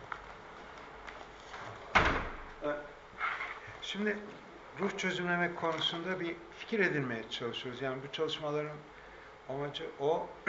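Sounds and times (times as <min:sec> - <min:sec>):
faint roomy hiss: 0:00.0 - 0:10.4
door swinging shut with a solid thud: 0:01.9 - 0:02.6
speech: 0:03.9 - 0:10.4.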